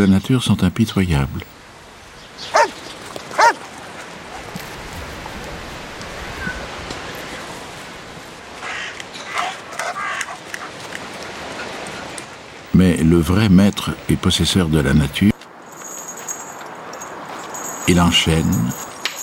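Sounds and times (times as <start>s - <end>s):
speech: 0.0s - 1.6s, 12.8s - 15.3s, 18.0s - 18.8s
steady outdoor hiss: 0.0s - 19.2s
dog barking: 2.5s - 2.8s, 3.4s - 3.6s
dog yapping: 2.5s - 3.6s.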